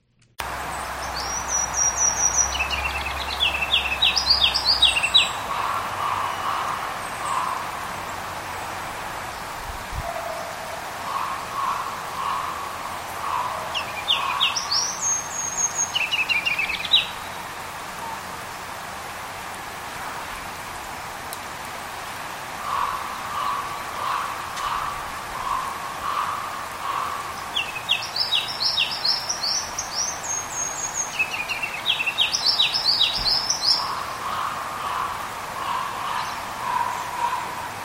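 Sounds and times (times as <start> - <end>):
faint outdoor background: 0.0 - 37.8
ruby-crowned kinglet song: 0.7 - 5.4, 27.5 - 34.0.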